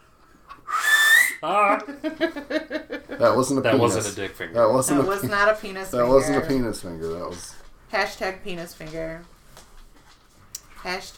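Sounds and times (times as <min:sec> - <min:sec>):
person whistling through fingers: 0:00.6 - 0:01.4
speech: 0:01.4 - 0:09.3, 0:10.8 - 0:11.1.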